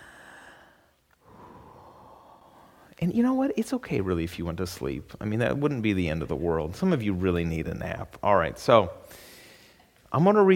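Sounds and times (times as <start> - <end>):
deep breath in and out: 0.0 - 3.0, 9.0 - 9.9
speech: 3.0 - 9.3, 10.1 - 10.5.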